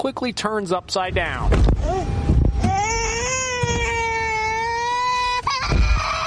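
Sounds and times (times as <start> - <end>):
speech: 0.0 - 3.0
low rumbling background: 0.0 - 6.2
baby boy in a car seat wailing: 1.8 - 6.2.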